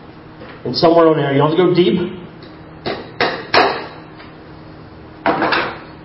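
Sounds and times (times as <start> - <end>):
faint hum: 0.0 - 6.0
speech: 0.6 - 2.2
hammer driving a nail into a wooden cross: 2.8 - 4.0.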